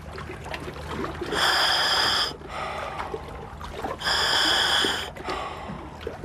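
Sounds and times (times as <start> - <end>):
breathing through a scuba diving regulator: 1.3 - 3.2, 4.0 - 6.0.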